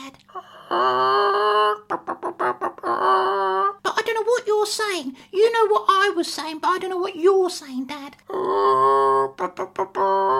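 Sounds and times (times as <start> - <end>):
father imitating chicken squawks and clucks: 0.6 - 3.8, 8.3 - 10.3
speech: 4.6 - 10.2.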